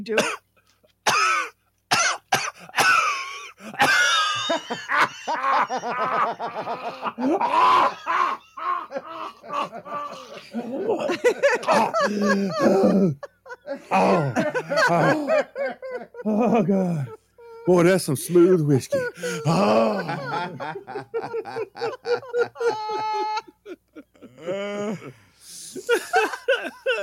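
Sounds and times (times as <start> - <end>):
speech: 0.0 - 0.5, 4.7 - 8.4, 9.0 - 23.5, 24.4 - 27.0
person imitating a heavy rattling smoker's cough: 0.1 - 0.4, 1.1 - 3.2, 3.8 - 4.1
laughter: 3.0 - 27.0
strained breaths: 24.4 - 25.9.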